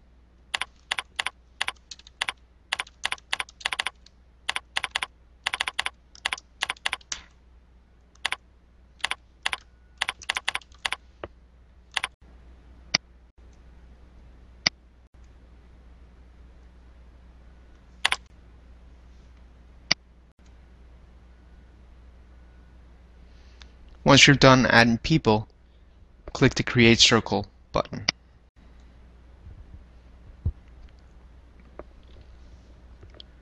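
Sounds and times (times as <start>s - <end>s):
typing on a computer keyboard: 0.5s - 7.2s, 8.2s - 8.4s, 9.0s - 11.0s, 11.9s - 12.2s
speech: 24.1s - 25.5s, 26.3s - 28.1s.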